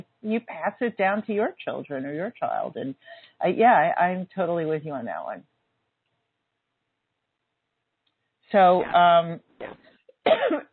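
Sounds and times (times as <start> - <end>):
speech: 0.2 - 5.5, 8.5 - 10.7
person coughing: 10.2 - 10.7.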